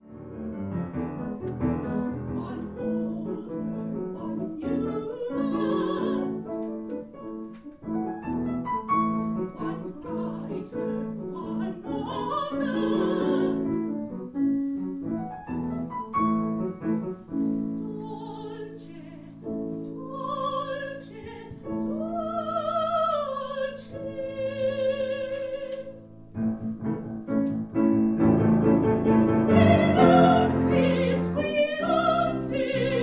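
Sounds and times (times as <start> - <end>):
piano playing a tango: 0.0 - 33.0
two sopranos singing a tango: 1.7 - 7.1, 8.9 - 14.0, 17.8 - 26.0, 29.0 - 33.0.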